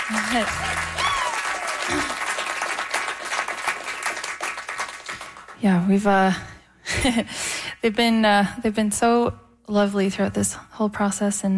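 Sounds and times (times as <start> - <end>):
crowd whooping and cheering: 0.0 - 2.7
crowd applauding: 0.0 - 5.6
speech: 0.1 - 1.0, 1.9 - 2.2, 5.6 - 11.5.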